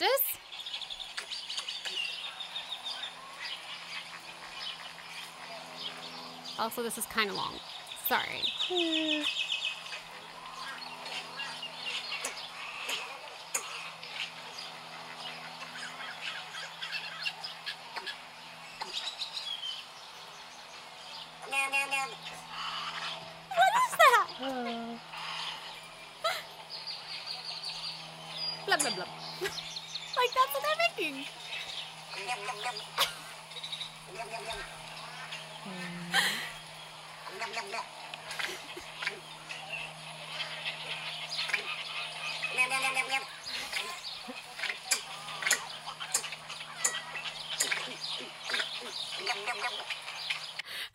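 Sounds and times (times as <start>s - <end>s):
strange varied bird calls: 0.0s - 50.8s
speech: 6.6s - 9.5s.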